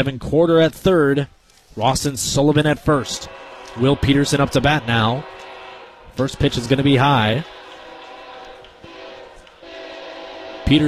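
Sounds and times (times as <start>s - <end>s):
speech: 0.0s - 5.4s, 6.2s - 7.6s, 10.7s - 10.8s
faint outdoor noise: 0.0s - 10.6s
distant train horn: 2.8s - 10.8s.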